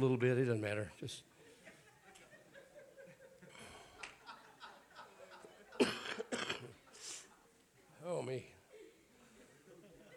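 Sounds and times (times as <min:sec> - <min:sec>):
speech: 0:00.0 - 0:01.3, 0:08.1 - 0:08.6
laughter: 0:01.4 - 0:07.6, 0:08.7 - 0:10.1
church congregation coughing during a sermon: 0:05.7 - 0:07.0.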